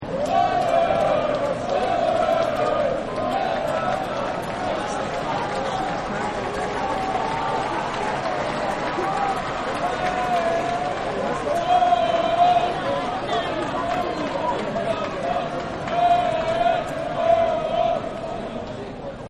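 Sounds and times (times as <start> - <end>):
stadium crowd chanting: 0.0 - 19.0.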